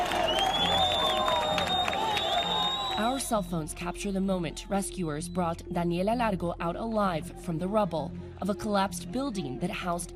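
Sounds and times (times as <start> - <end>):
crowd applauding at a rescue site: 0.0 - 3.2
speech: 3.0 - 10.1.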